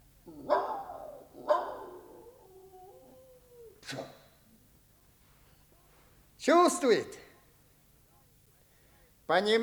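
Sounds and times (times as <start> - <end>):
dog barking: 0.3 - 2.4
dog whining: 0.3 - 4.3
speech: 3.9 - 4.2, 6.4 - 7.2, 9.3 - 9.6.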